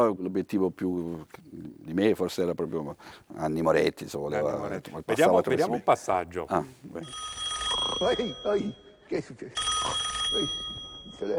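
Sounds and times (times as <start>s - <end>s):
speech: 0.0s - 11.3s
telephone ringing: 7.0s - 8.9s, 9.6s - 11.3s.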